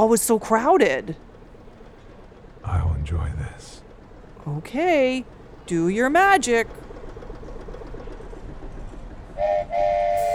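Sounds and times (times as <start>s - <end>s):
speech: 0.0s - 1.3s, 2.6s - 3.8s, 4.4s - 6.8s
low rumbling background: 2.6s - 6.4s
small ride-on train's horn tooting: 9.4s - 10.3s.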